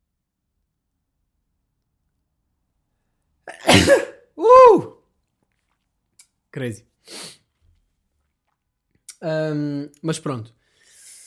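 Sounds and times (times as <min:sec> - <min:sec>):
sneeze: 0:03.5 - 0:04.8
speech: 0:03.7 - 0:04.9, 0:06.6 - 0:07.4, 0:09.2 - 0:10.6.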